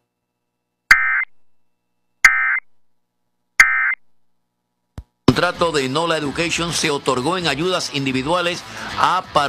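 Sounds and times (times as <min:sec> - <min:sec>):
harsh steady emergency alert system test tone on radio: 0:00.9 - 0:01.5, 0:02.3 - 0:02.7, 0:03.6 - 0:04.1
buzzy emergency alert system data bursts: 0:02.3 - 0:02.7
speech: 0:05.3 - 0:09.4.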